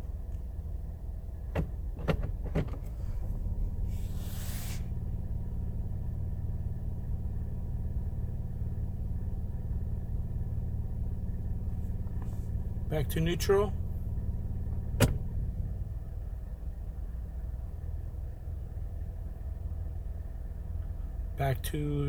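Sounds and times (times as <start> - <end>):
SUV engine idling in drive with the brake engaged: 0.0 - 22.0
brief hiss: 3.9 - 5.0
speech: 13.0 - 13.8, 21.5 - 22.0.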